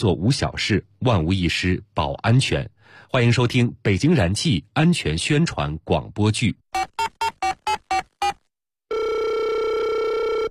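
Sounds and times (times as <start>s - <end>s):
speech: 0.0s - 7.0s
electronic telephone ring tones during a call to a gas station: 6.8s - 10.4s.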